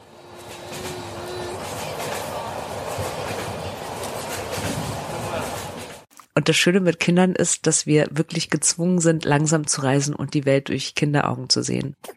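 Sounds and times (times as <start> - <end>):
night train rattling along the tracks: 0.0 - 6.1
speech: 6.4 - 12.1.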